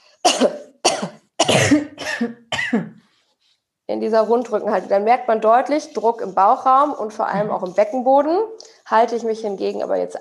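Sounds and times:
loud forceful coughs while bent forward in a hunched posture: 0:00.2 - 0:03.0
speech: 0:02.2 - 0:02.9, 0:03.9 - 0:10.1.

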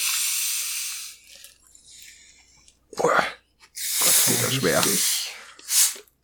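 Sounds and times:
soda bottle opening with hiss of escaping gas: 0:00.0 - 0:01.3, 0:03.8 - 0:06.2
speech: 0:04.5 - 0:05.1.

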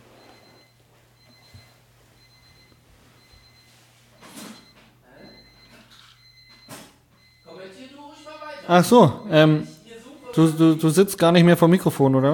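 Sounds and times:
alarm clock with thin high electronic beeping: 0:00.2 - 0:10.9
speech: 0:08.7 - 0:09.7, 0:10.4 - 0:12.3.

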